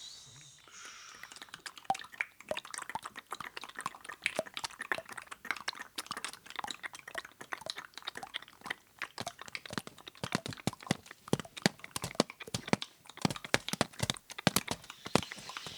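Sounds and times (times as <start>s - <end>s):
rapid irregular water drips: 0.7s - 15.7s.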